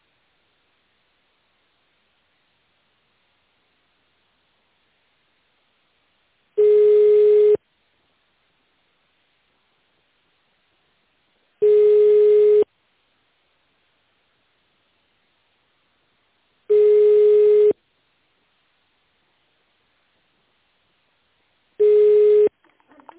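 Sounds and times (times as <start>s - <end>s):
telephone line beeps while a call is transferred to an information desk: 6.6s - 7.6s, 11.6s - 12.7s, 16.7s - 17.8s, 21.8s - 22.5s.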